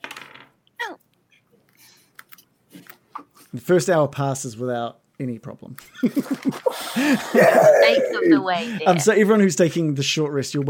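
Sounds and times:
dice rolling on a hard tabletop: 0:00.0 - 0:00.6
speech: 0:03.6 - 0:10.6
laughter: 0:05.9 - 0:09.2.

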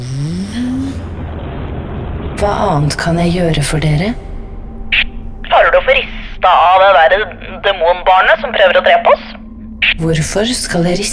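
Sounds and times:
motor engine running: 0:00.0 - 0:08.9
speech: 0:02.4 - 0:04.3, 0:05.8 - 0:09.3, 0:10.0 - 0:11.1.

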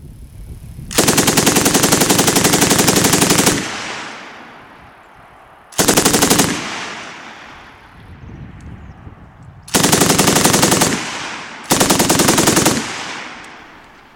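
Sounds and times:
KSB 58 machine gun firing bursts of automatic fire: 0:00.9 - 0:04.7, 0:05.8 - 0:07.8, 0:09.7 - 0:14.0
rolling echo of machine gun bursts: 0:00.9 - 0:05.1, 0:05.7 - 0:08.0, 0:09.7 - 0:14.1.

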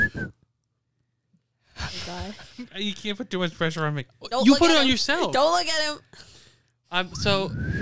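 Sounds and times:
breathy puffs of air from attempted whistling: 0:00.0 - 0:00.4, 0:07.3 - 0:07.8
speech: 0:02.1 - 0:06.3, 0:06.9 - 0:07.8.

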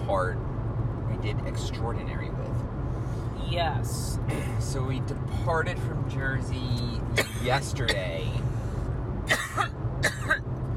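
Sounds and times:
steady low engine rumble: 0:00.0 - 0:10.7
speech: 0:00.1 - 0:00.5, 0:01.1 - 0:02.8, 0:03.5 - 0:08.5
person coughing harshly: 0:07.2 - 0:08.0, 0:09.3 - 0:10.7.

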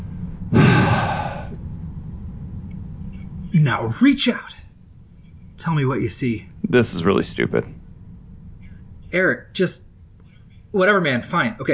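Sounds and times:
breathy exhale: 0:00.0 - 0:01.6
speech: 0:03.5 - 0:04.6, 0:05.6 - 0:07.8, 0:09.1 - 0:09.9, 0:10.7 - 0:11.7.

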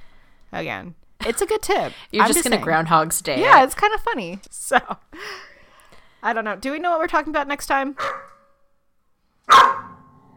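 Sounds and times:
speech: 0:00.5 - 0:05.5, 0:06.2 - 0:08.2
dog barking: 0:08.0 - 0:08.5, 0:09.5 - 0:10.1.

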